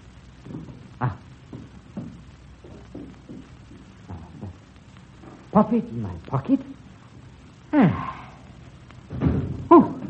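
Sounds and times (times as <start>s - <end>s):
speech: 5.6s - 6.8s
front door thudding shut: 9.1s - 10.0s.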